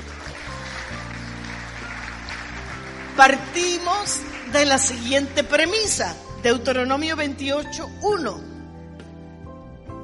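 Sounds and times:
crowd applauding: 0:00.0 - 0:06.2
speech: 0:03.2 - 0:08.5.

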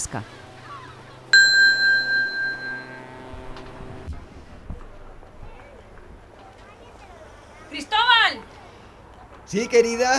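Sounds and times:
speech: 0:00.0 - 0:00.4, 0:09.5 - 0:10.1
telephone ringing with a bell-like tone: 0:01.4 - 0:03.6.

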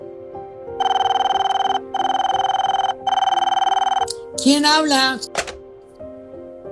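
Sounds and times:
telephone ringing in buzzing trills on an outgoing call to a home phone: 0:00.8 - 0:04.1
speech: 0:04.4 - 0:05.4.

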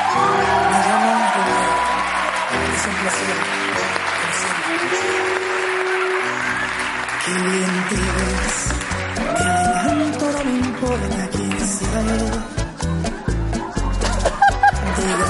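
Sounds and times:
scattered whoops and shouts from the crowd: 0:00.0 - 0:02.6, 0:09.2 - 0:10.2
crowd applauding as a guest is called in: 0:00.0 - 0:15.2
laughter: 0:12.6 - 0:15.2.

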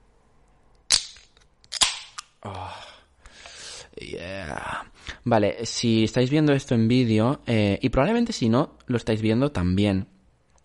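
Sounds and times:
beer can cracking open: 0:00.9 - 0:02.3
speech: 0:04.0 - 0:10.1.

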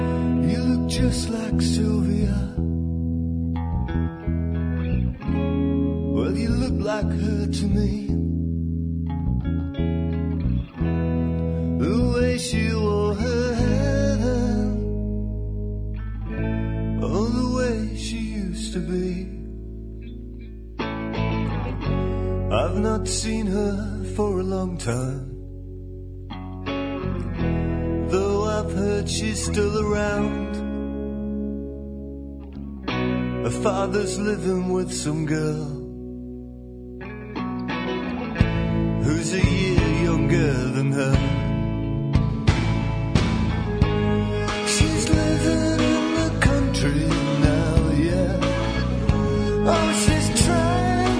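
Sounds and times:
male vocalist singing over guitars, bass and drums: 0:00.0 - 0:02.8, 0:06.1 - 0:08.3, 0:11.8 - 0:15.0, 0:17.0 - 0:19.6, 0:22.5 - 0:25.5, 0:28.0 - 0:30.8, 0:33.4 - 0:36.0, 0:39.0 - 0:41.6, 0:43.9 - 0:51.1
melodic rock song with guitars, bass and drums: 0:00.0 - 0:51.1
speech: 0:00.9 - 0:02.6, 0:06.8 - 0:08.2, 0:23.1 - 0:25.3, 0:29.0 - 0:30.6, 0:33.5 - 0:35.8.

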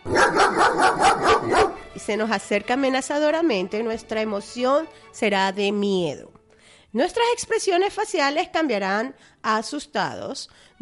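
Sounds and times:
dog barking: 0:00.0 - 0:01.8
speech: 0:02.1 - 0:10.8.

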